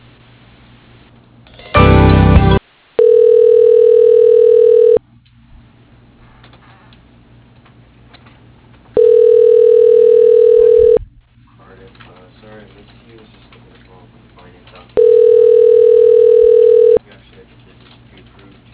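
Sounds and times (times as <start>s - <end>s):
telephone line tone while a call is transferred to voicemail: 3.0s - 5.0s, 9.0s - 11.0s, 15.0s - 17.0s.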